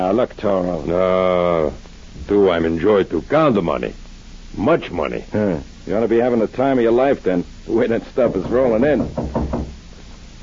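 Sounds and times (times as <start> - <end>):
speech: 0.0 - 9.4
firm knocking on a back door: 8.2 - 9.8.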